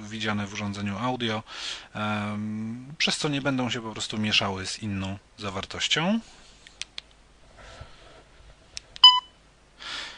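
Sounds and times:
speech: 0.1s - 6.4s
soft clicks: 6.6s - 7.2s
short sharp electronic beep from a DAISY audiobook player: 9.0s - 9.4s.

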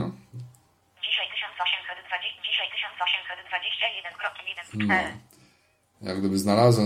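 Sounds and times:
tinny synthesized voice from a phone with a motion-sensor step counter: 1.0s - 5.2s
speech: 2.1s - 5.4s, 6.0s - 6.8s.

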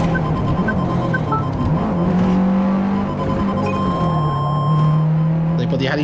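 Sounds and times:
faint high electronic tones: 0.0s - 1.6s, 2.9s - 5.0s
race car engine braking before a corner in a racing video game: 0.0s - 6.0s.

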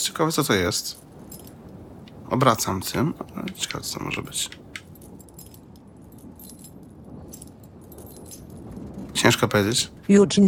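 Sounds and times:
speech: 0.0s - 1.1s, 2.3s - 4.7s, 9.2s - 10.4s
steady low rumble: 0.0s - 10.4s
keys jangling: 0.9s - 2.2s, 3.3s - 9.5s.

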